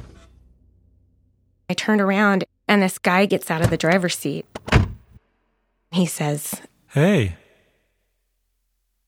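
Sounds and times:
speech: 0:01.7 - 0:04.8, 0:05.9 - 0:07.4
car engine rumbling while pulling up: 0:03.6 - 0:05.2.

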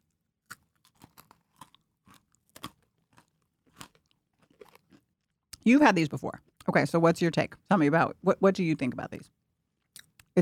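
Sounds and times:
person chewing crunchy yogurt-coated mini pretzels: 0:00.0 - 0:05.7, 0:06.4 - 0:06.7, 0:09.8 - 0:10.4
speech: 0:05.6 - 0:09.4.

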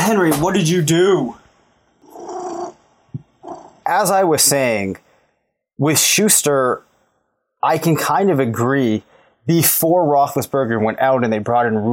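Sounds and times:
speech: 0:00.1 - 0:01.4, 0:03.9 - 0:05.0, 0:05.8 - 0:06.9, 0:07.6 - 0:11.9
cat purring: 0:02.0 - 0:03.9.

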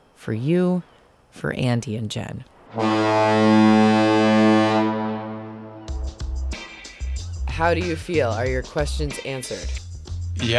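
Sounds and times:
speech: 0:00.2 - 0:04.6, 0:07.6 - 0:09.8, 0:10.4 - 0:10.5
long deep foghorn blast at the San Francisco Bay Bridge: 0:02.7 - 0:06.2.

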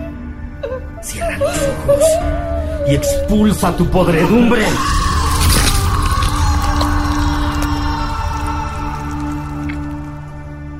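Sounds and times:
speech: 0:01.0 - 0:05.1
anguished distorted scream: 0:04.6 - 0:10.0.

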